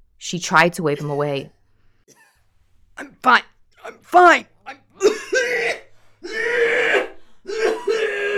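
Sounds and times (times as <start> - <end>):
speech: 0.2 - 2.2, 3.0 - 7.8
person coughing violently: 1.0 - 1.5, 3.0 - 8.3
person gasping: 3.0 - 8.3.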